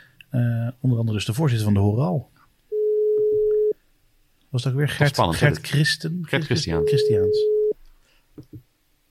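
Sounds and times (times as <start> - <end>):
speech: 0.3 - 2.4, 4.5 - 7.5
telephone busy signal during a call: 2.7 - 3.8, 6.8 - 7.7.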